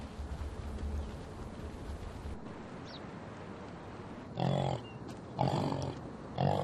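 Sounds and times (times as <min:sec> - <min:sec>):
steady outdoor rumble: 0:00.0 - 0:06.6
yak giving low snort-like grunts in the Pamir: 0:04.4 - 0:06.6.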